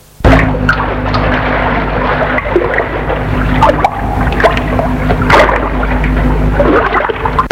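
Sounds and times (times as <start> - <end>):
rushing water of mountain waterfall and torrent pouring into lake: 0.3 - 7.4.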